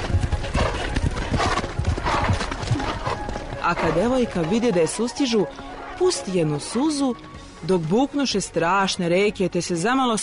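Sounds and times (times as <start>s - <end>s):
horses galloping: 0.0s - 7.0s
speech: 3.7s - 10.2s.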